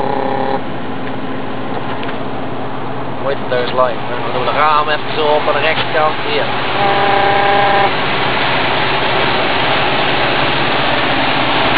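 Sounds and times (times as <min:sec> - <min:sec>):
brief tonal hum: 0:00.0 - 0:00.7, 0:06.7 - 0:08.0
vehicle engine roaring and rattling while driving: 0:00.0 - 0:11.7
speech: 0:03.3 - 0:08.0.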